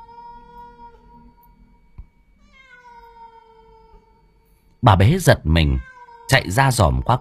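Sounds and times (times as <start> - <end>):
cat in a yard meowing plaintively: 0.0 - 1.4, 2.4 - 4.3, 5.6 - 6.6
speech: 4.8 - 7.1.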